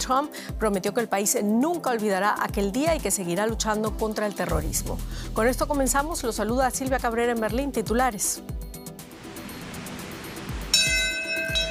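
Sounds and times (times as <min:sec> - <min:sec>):
speech: 0:00.0 - 0:08.7
memorial bell tolling: 0:10.7 - 0:11.6.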